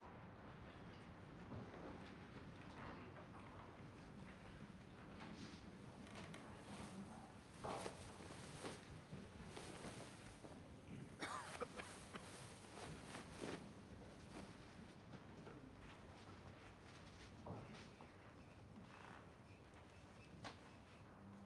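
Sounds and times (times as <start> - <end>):
human presence in a large busy room: 0.0 - 21.4.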